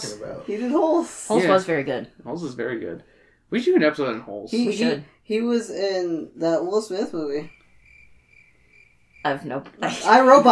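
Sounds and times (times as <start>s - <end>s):
speech: 0.0s - 7.6s, 9.2s - 10.5s
crickets chirping: 7.0s - 10.5s.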